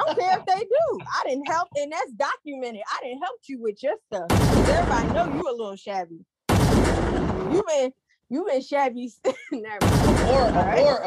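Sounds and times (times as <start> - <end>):
laughter: 0.0 - 1.2, 10.3 - 11.0
speech: 0.1 - 11.0
rapid gunfire: 4.3 - 5.4, 6.5 - 7.6, 9.8 - 10.7.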